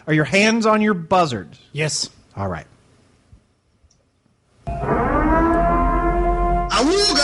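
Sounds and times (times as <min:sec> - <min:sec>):
speech: 0:00.0 - 0:02.7
civil defense siren wailing: 0:04.7 - 0:07.2.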